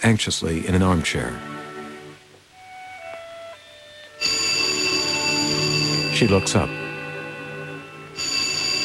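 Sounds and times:
speech: 0.0s - 1.6s, 6.2s - 6.8s
telephone bell ringing loudly and shrilly: 4.2s - 8.8s.

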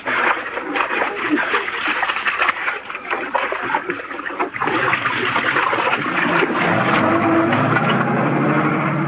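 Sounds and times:
faint voices: 0.0s - 9.0s
heavy truck engine rumbling: 4.4s - 9.0s.

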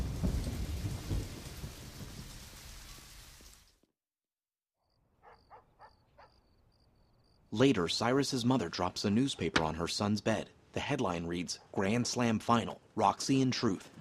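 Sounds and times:
steady dense rain hissing: 0.0s - 3.9s
speech: 7.5s - 13.9s.

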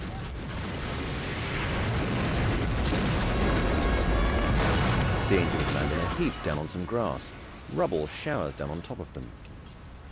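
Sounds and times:
rocket launching: 0.0s - 7.8s
rocket explosion blowing apart a tower: 0.0s - 8.3s
speech: 5.3s - 9.4s.

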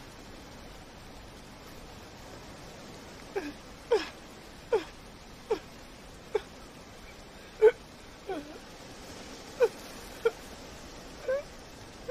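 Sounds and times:
woman sobbing outdoors: 3.3s - 6.7s, 7.4s - 8.7s, 9.5s - 10.5s, 11.2s - 12.0s.

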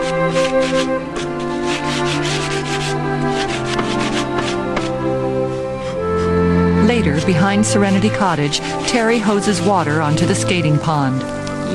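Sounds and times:
sanding block rubbed over wooden boards of an old toy sled: 0.0s - 6.3s, 8.4s - 10.5s
speech: 0.2s - 1.2s, 7.2s - 11.7s.

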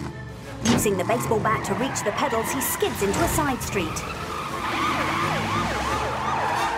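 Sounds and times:
speech: 0.8s - 4.4s
police car siren wailing during a chase: 1.4s - 6.7s.

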